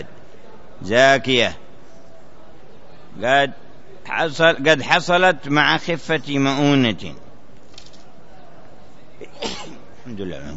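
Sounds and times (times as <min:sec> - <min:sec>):
speech: 0:00.8 - 0:01.6, 0:03.1 - 0:07.2, 0:10.1 - 0:10.5
person sneezing: 0:09.3 - 0:09.8.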